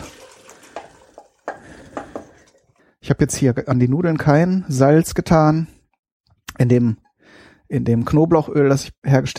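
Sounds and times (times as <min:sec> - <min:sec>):
water pouring from a pot into a sieve: 0:00.0 - 0:02.9
speech: 0:03.1 - 0:05.8, 0:06.6 - 0:07.0, 0:07.7 - 0:09.3.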